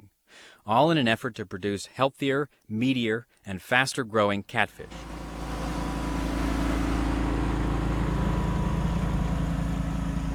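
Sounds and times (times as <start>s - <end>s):
speech: 0.6s - 5.1s
truck engine rumbling at low speed along pond levee: 4.8s - 10.3s.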